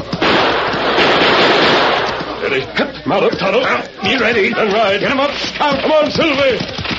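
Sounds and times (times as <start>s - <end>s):
gunshots fired at the ceiling of a tunnel: 0.0s - 2.4s
speech: 2.6s - 6.8s.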